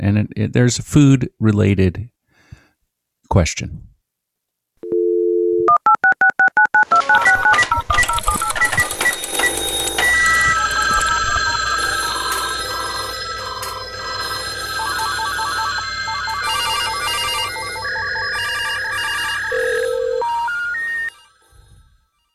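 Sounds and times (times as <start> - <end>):
speech: 0.0 - 2.1, 3.3 - 3.9
telephone dial tone: 4.8 - 21.4
screeching fax-like electronic tones and warbling chirps: 6.8 - 22.3.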